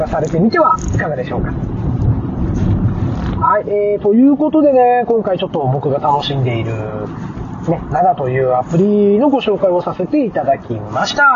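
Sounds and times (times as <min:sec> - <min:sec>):
speech: 0:00.0 - 0:01.8, 0:03.4 - 0:11.3
low rumble of a car driving heard from inside the cabin: 0:00.0 - 0:11.3.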